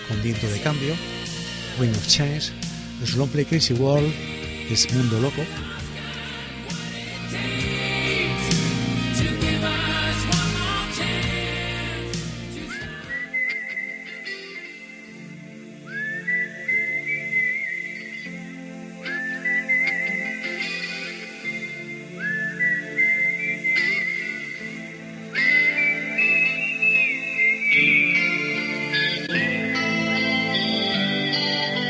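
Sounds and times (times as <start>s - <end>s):
soft band backing of sustained guitar and keyboard: 0.0s - 31.8s
speech: 0.1s - 5.7s
singer whistling melody as rock song intro: 6.7s - 31.8s.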